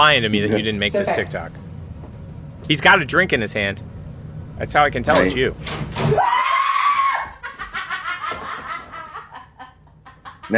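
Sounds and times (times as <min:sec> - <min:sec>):
speech: 0:00.0 - 0:01.6, 0:02.7 - 0:03.9, 0:04.6 - 0:06.4
high-pitched scream from a video: 0:06.1 - 0:07.4
laughter: 0:07.2 - 0:10.5.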